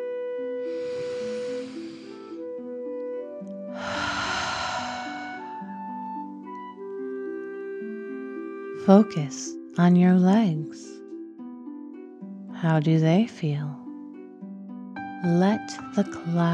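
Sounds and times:
soft sustained musical tones: 0.0 - 16.5
slow deep breathing in and out as a guided relaxation exercise: 0.6 - 2.5, 3.7 - 6.1
speech: 8.8 - 11.0, 12.6 - 13.8, 15.2 - 16.5.

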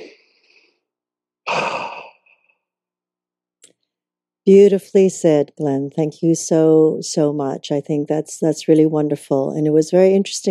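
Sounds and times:
deep breath sigh: 1.5 - 2.4
speech: 4.5 - 10.4.

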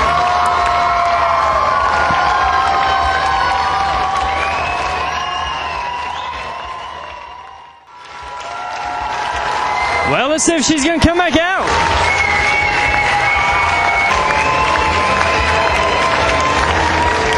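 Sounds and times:
large outdoor festival crowd cheering and screaming for an encore: 0.0 - 17.3
whoops and shrill voices in a festival crowd: 0.0 - 17.3
speech: 10.4 - 12.0.

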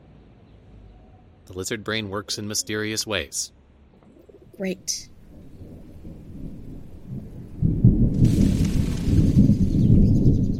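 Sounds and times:
speech: 1.5 - 3.6, 4.6 - 5.1
deep rolling thunder as a storm approaches: 4.2 - 10.5
hiss of rain or wind: 4.6 - 10.5.

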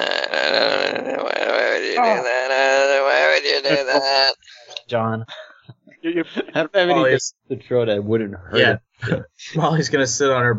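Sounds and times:
long drawn-out resonant burp: 0.0 - 4.5
speech: 2.0 - 2.4, 3.6 - 5.4, 6.0 - 10.5.

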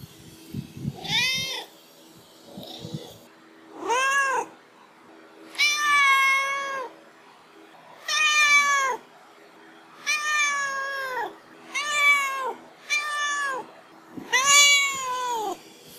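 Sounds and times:
pet cat yowling: 0.9 - 1.7, 3.7 - 4.6, 5.5 - 6.9, 8.0 - 9.0, 10.0 - 15.6.

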